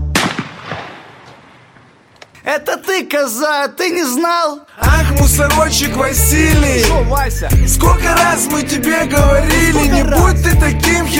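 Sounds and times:
gunshot: 0.0 - 2.4
speech: 2.5 - 11.1.

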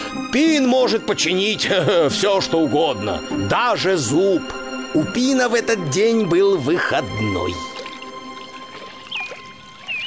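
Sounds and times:
speech: 0.3 - 7.7
sea water washing gently against the shore: 6.8 - 10.0
high bird cries: 9.0 - 10.0.

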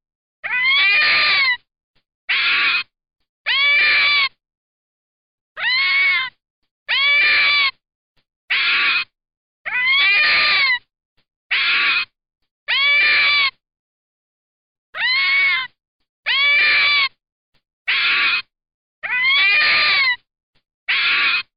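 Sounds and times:
red fox giving hoarse wailing screams: 0.4 - 1.6, 2.3 - 2.9, 3.5 - 4.4, 5.6 - 7.8, 8.5 - 9.1, 9.7 - 10.8, 11.5 - 12.1, 12.7 - 13.6, 15.0 - 15.7, 16.3 - 17.2, 17.9 - 20.2, 20.9 - 21.5.

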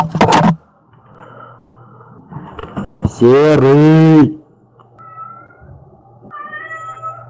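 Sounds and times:
low steady hum: 0.0 - 7.2
speech: 3.2 - 4.4
cat meowing in long drawn-out yowls: 5.0 - 7.2.

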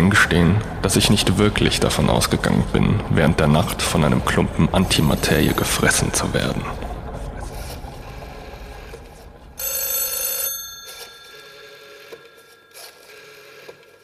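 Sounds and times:
speech: 0.0 - 6.9
telephone bell ringing: 9.6 - 14.0.

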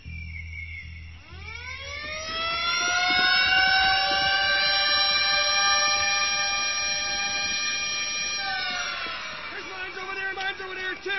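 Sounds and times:
low rumbling noise: 0.0 - 11.1
loud siren wailing: 0.8 - 11.1.

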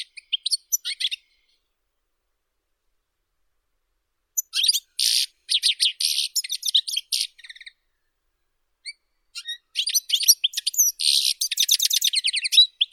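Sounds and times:
European goldfinch singing: 0.0 - 1.6, 4.4 - 7.9, 8.8 - 12.9.

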